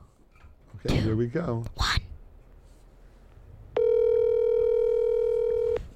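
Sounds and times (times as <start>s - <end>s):
speech: 0.8s - 2.0s
steady electronic telephone call dialing tone: 3.8s - 5.9s.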